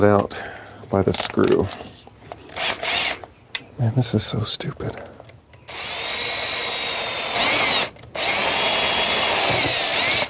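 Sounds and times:
speech: 0.0 - 1.9, 3.8 - 5.1
power drill boring into a plastic part clamped in a vise: 2.6 - 3.2, 5.7 - 10.2.

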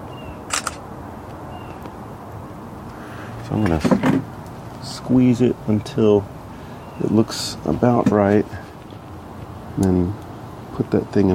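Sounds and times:
faint steady hiss: 0.0 - 11.3
camera shutter clicks: 0.5 - 0.8
speech: 3.5 - 6.4, 7.0 - 8.6, 9.8 - 10.2, 10.8 - 11.3.

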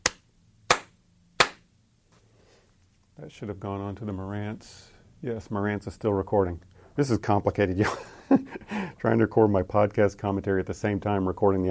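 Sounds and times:
hand claps for syncing recordings: 0.0 - 1.7
speech: 3.2 - 11.7.

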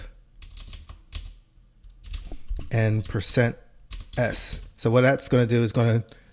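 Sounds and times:
typing on a computer keyboard: 0.4 - 3.3, 3.9 - 4.7
speech: 2.7 - 3.6, 4.2 - 6.2.

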